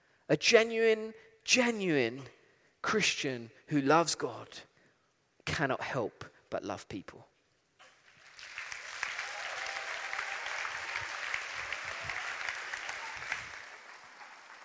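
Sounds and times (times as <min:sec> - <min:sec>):
speech: 0:00.3 - 0:04.7, 0:05.5 - 0:07.3
room full of people applauding: 0:07.8 - 0:14.6.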